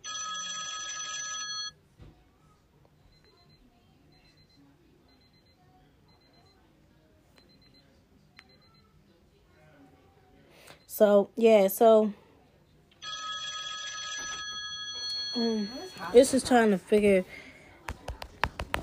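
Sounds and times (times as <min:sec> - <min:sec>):
electronic phone ringtone: 0:00.0 - 0:01.8, 0:13.0 - 0:16.5
speech: 0:11.0 - 0:12.2, 0:15.4 - 0:17.4.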